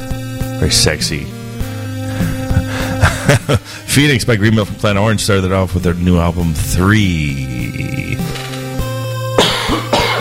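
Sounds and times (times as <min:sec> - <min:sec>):
speech: 0:00.6 - 0:01.4, 0:03.3 - 0:08.0
laughter: 0:02.1 - 0:03.9
person clearing throat: 0:09.4 - 0:10.2
person coughing: 0:09.4 - 0:10.2.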